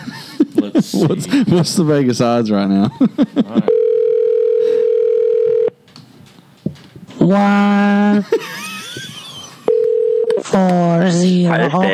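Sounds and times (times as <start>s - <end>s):
laughter: 0.0s - 3.9s, 7.4s - 9.9s, 11.3s - 11.9s
speech: 0.1s - 3.7s, 7.3s - 8.4s, 10.6s - 11.9s
telephone dial tone: 3.7s - 5.8s, 9.6s - 10.8s.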